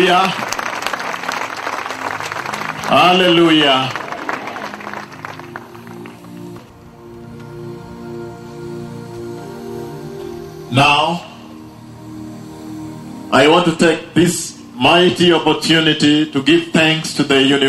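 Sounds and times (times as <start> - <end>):
crowd clapping in dense steady applause: 0.0 - 7.3
speech: 0.1 - 0.6, 2.9 - 4.0, 10.7 - 11.3, 13.3 - 17.6.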